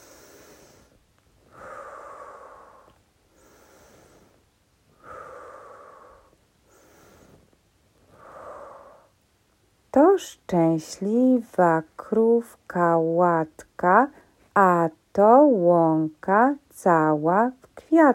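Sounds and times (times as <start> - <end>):
person breathing deeply while sitting cross-legged: 0.0 - 9.2
speech: 10.0 - 18.1.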